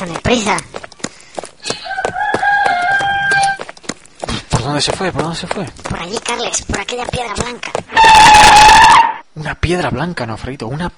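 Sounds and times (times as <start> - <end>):
speech: 0.0 - 0.8, 4.7 - 10.9
rooster crowing: 1.7 - 3.6.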